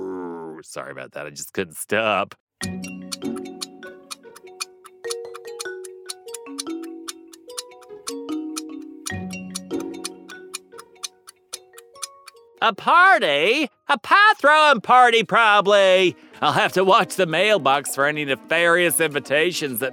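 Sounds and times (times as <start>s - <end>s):
speech: 0.6s - 3.0s, 12.6s - 19.9s
tense game-show countdown musical backing of sustained notes: 2.6s - 12.6s
clock ticking for a quiz countdown: 2.6s - 15.7s.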